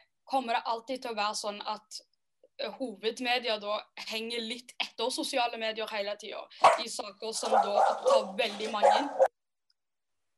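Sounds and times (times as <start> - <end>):
speech: 0.3 - 9.3
dog barking: 6.6 - 9.3.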